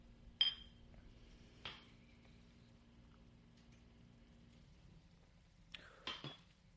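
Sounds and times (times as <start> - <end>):
shot glasses clinking in a toast: 0.4 - 0.8.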